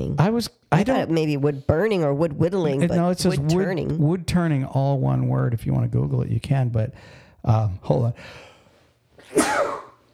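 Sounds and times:
speech: 0.2 - 8.5
single loud sneeze: 9.2 - 10.0.

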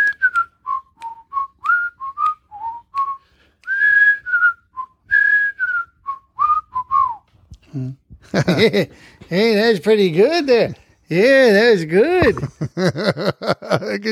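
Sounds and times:
people whistling a melody together: 0.0 - 7.3
speech: 7.8 - 14.1
laughter: 8.3 - 9.0, 12.2 - 14.1.

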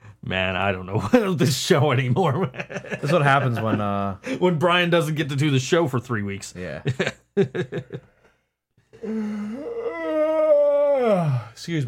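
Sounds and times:
speech: 0.3 - 8.2, 9.0 - 9.5, 11.1 - 11.8
laughter: 2.2 - 4.5, 6.8 - 8.2
person yawning loudly during a live radio broadcast: 9.0 - 11.6.

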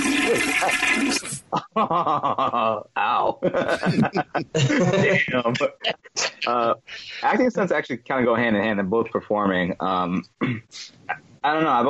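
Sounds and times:
toilet flushing with rushing water: 0.0 - 1.4
speech: 0.6 - 11.8
laughter: 1.5 - 7.5.

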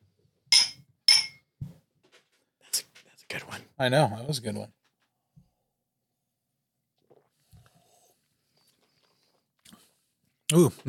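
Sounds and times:
glasses clinking in a toast: 0.5 - 1.4
speech: 3.3 - 4.8, 10.5 - 10.8.

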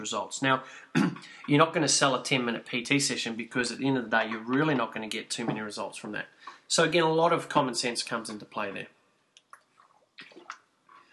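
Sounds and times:
speech: 0.0 - 9.0
person gulping and slurping water: 9.4 - 11.1.

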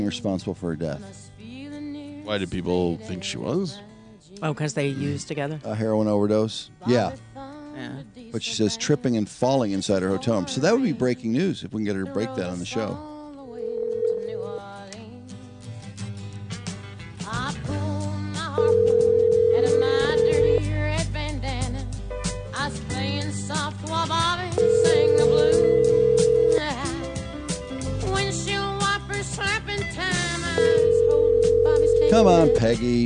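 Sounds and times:
speech: 0.0 - 1.4, 2.3 - 13.1
continuous music: 0.0 - 33.0
telephone ringback tones on an outgoing call: 13.6 - 14.8, 18.6 - 20.6, 24.6 - 27.1, 30.5 - 33.0.

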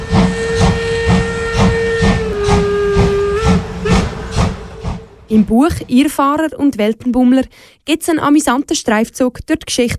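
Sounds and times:
steam locomotive whistle blowing long steady tone: 0.0 - 5.4
speech: 5.3 - 9.9.

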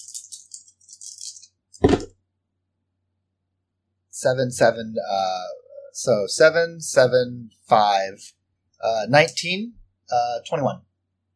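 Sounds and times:
dice including a plot die shaken: 0.0 - 1.9
speech: 4.2 - 10.9.

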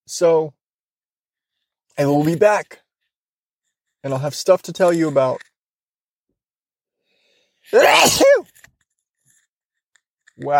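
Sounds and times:
speech: 0.1 - 0.6, 2.0 - 2.8, 4.0 - 5.5, 7.7 - 8.5, 10.4 - 10.5
loud sneeze: 7.7 - 8.5.

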